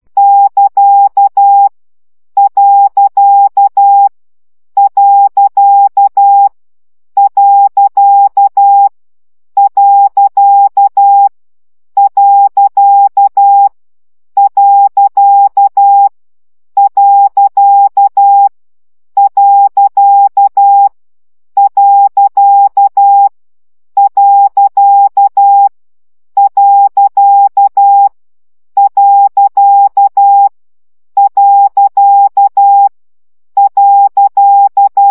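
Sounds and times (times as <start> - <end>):
morse code dots practice at 10 baud: 0.2 - 1.7, 2.4 - 4.1, 4.8 - 6.5, 7.2 - 8.9, 9.6 - 11.3, 12.0 - 13.7, 14.4 - 16.1, 16.8 - 18.5, 19.2 - 21.0, 21.6 - 23.3, 24.0 - 25.7, 26.4 - 28.2, 28.8 - 30.5, 31.2 - 32.9, 33.6 - 35.0.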